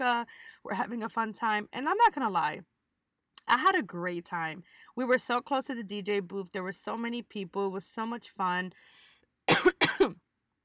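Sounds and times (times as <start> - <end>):
speech: 0.0 - 2.7, 3.5 - 10.2
harsh coughs: 9.5 - 10.2.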